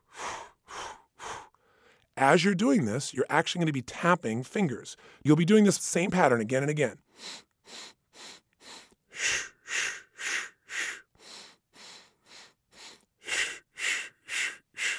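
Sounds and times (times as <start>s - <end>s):
quick nasal inhales: 0.0s - 2.1s, 5.0s - 5.2s, 7.1s - 14.9s
speech: 2.2s - 7.9s.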